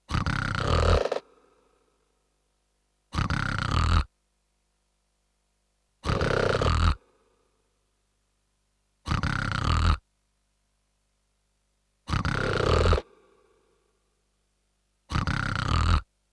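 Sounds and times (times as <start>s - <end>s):
snoring: 0.1s - 1.5s, 3.1s - 4.1s, 6.0s - 7.2s, 9.1s - 10.0s, 12.1s - 13.5s, 15.1s - 16.1s.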